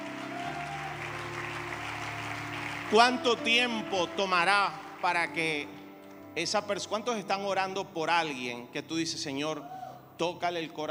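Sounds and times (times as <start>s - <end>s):
church congregation clapping: 0.0s - 6.3s
speech: 2.9s - 5.8s, 6.4s - 10.8s.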